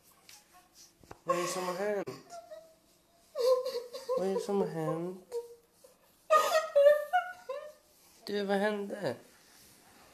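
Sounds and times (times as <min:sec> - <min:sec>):
speech: 0:01.3 - 0:02.3, 0:04.2 - 0:05.3, 0:08.3 - 0:09.3
woman mimicking sobbing with relief: 0:01.3 - 0:07.9.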